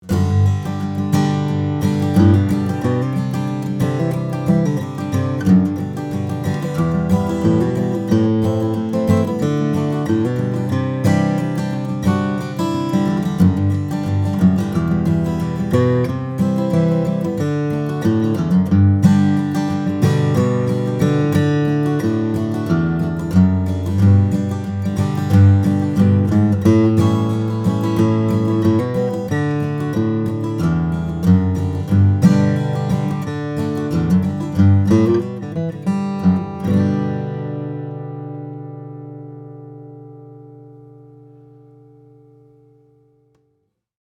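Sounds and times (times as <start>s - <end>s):
steel-string flattop guitar with mahogany and Adirondack red spruce: 0.0s - 43.6s.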